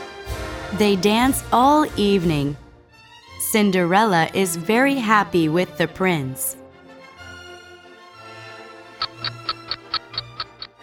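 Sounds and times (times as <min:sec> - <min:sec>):
speech: 0:00.7 - 0:02.6, 0:03.5 - 0:06.6
clock ticking: 0:09.0 - 0:10.8.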